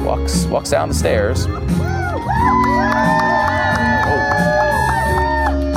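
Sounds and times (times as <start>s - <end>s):
speech: 0.1s - 3.2s
overlapping whoops and shouts of rally crowd: 1.5s - 5.7s
political rally crowd cheering: 1.5s - 5.7s.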